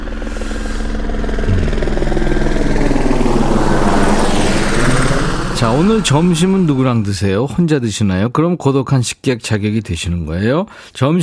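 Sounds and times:
helicopter rotor thumping: 1.0 - 5.5
speech: 5.6 - 11.2.

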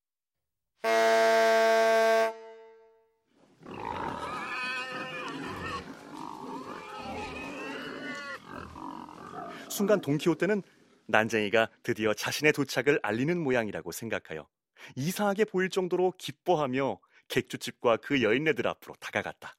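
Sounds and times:
swineherd blowing a horn to gather pigs: 0.8 - 3.0
crowd of pigs grunting and squealing: 3.6 - 10.4
speech: 9.8 - 19.5.

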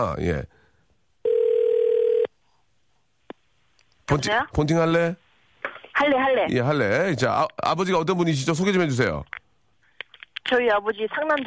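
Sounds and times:
speech: 0.0 - 0.6, 4.1 - 5.2, 6.0 - 9.4, 10.5 - 11.4
telephone ringback tone while placing a call: 1.2 - 2.3.

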